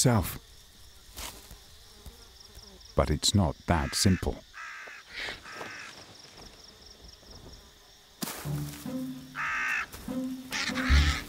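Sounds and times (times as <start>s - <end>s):
speech: 0.0s - 0.5s, 3.0s - 4.5s
crow at a cow carcass cawing harshly: 3.8s - 6.1s, 9.3s - 11.2s.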